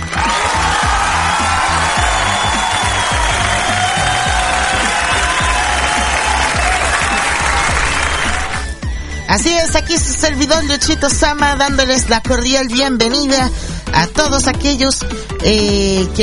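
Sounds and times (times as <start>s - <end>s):
studio audience applause: 0.0s - 8.8s
speech: 9.3s - 16.2s.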